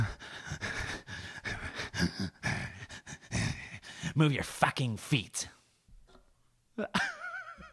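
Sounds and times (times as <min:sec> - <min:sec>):
voice imitating heavy angry breathing of a wife sweeping aggressively: 0:00.0 - 0:04.4
speech: 0:04.2 - 0:05.5, 0:06.8 - 0:07.1.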